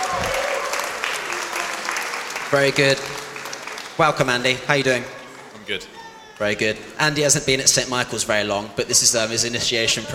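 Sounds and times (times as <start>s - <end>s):
crowd applauding: 0.0s - 6.9s
speech: 2.5s - 3.2s, 4.0s - 10.1s.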